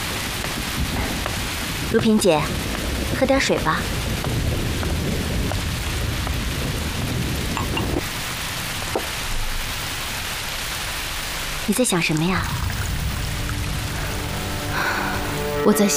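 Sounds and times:
thunder rumbling: 0.0s - 15.6s
heavy thunderstorm rain: 0.0s - 15.9s
speech: 1.9s - 4.0s, 11.7s - 12.7s, 15.6s - 15.9s.

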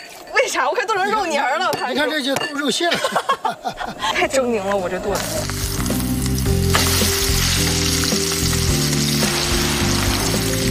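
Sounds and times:
speech: 0.5s - 5.7s
laughter: 2.8s - 4.6s
chicken stir-frying in hot oil in a wok: 5.1s - 10.7s.

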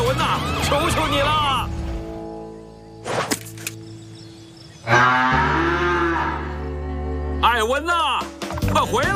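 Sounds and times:
speech: 0.1s - 1.7s, 7.6s - 9.1s
cow mooing: 4.9s - 6.7s.

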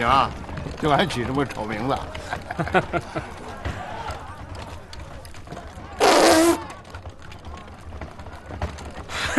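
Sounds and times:
speech: 0.0s - 3.4s
voices: 0.0s - 9.3s
laughter: 2.0s - 5.0s, 9.0s - 9.3s
loud raspy fart: 6.0s - 6.6s.

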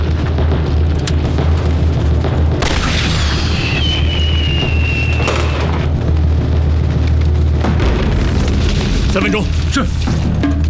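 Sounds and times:
heavy rumbling noise: 0.0s - 10.6s
thin high whistle of a signal flare streaking skyward: 3.4s - 5.7s
speech: 9.2s - 10.3s.

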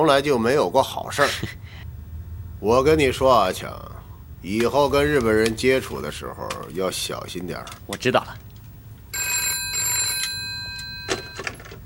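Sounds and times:
speech: 0.0s - 1.6s, 2.6s - 8.4s
telephone bell ringing: 9.1s - 11.8s.

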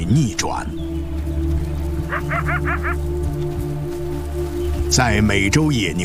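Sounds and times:
speech: 0.0s - 1.1s, 2.1s - 3.6s, 4.9s - 6.0s
steady low droning background: 0.0s - 6.0s
coyotes yipping while mobbing a lone wolf: 0.8s - 5.0s.

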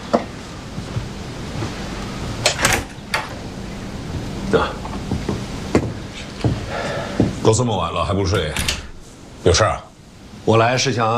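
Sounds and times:
low steady hiss: 0.0s - 11.1s
door latch clicking and rattling as a door is opened: 2.4s - 3.3s, 8.4s - 9.0s
speech: 4.5s - 4.8s, 7.4s - 8.8s, 9.4s - 11.1s.

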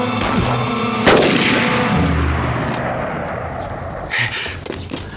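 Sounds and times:
gunshots fired outside during an armed clash: 0.2s - 4.2s.

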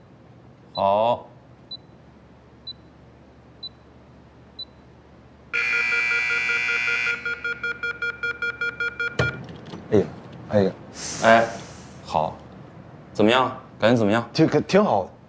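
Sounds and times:
speech: 0.8s - 1.3s, 9.9s - 12.4s, 13.2s - 15.2s
loud sustained electronic timer tone: 5.6s - 8.0s
electronic timer beeping after a door is locked: 5.6s - 9.4s
clattering knocks: 9.0s - 10.6s.

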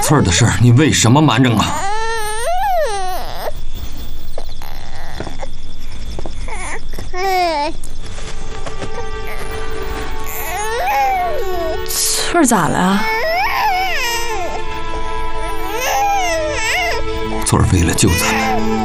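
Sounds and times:
speech: 0.1s - 2.0s, 12.4s - 13.1s, 17.5s - 18.8s
baby crying: 1.4s - 3.6s, 4.2s - 5.6s, 6.4s - 7.8s, 8.9s - 18.8s
baby whimpering: 1.5s - 8.0s, 8.8s - 17.2s, 17.8s - 18.8s.

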